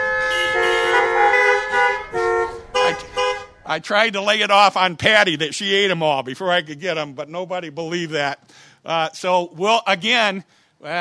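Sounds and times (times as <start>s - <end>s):
car horn honking: 0.0s - 3.8s
steady traffic noise: 0.0s - 6.0s
speech: 3.7s - 10.9s.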